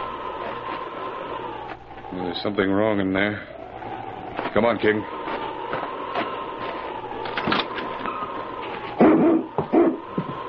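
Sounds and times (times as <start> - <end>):
faint rumbling noise: 0.0 - 10.4
speech: 2.1 - 3.5, 4.5 - 5.2
husky whimpering: 9.0 - 10.0.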